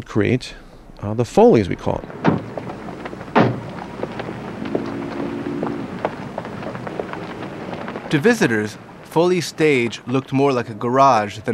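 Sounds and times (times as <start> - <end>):
speech: 0.0 - 2.3, 8.1 - 11.5
faint scattered ticks and crackles: 0.4 - 11.5
door creaking while opening: 2.0 - 6.1.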